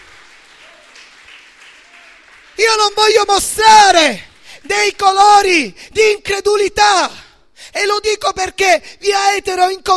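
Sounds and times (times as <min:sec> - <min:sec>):
congregation clapping during a church worship service: 0:00.0 - 0:05.5
speech: 0:02.6 - 0:09.9.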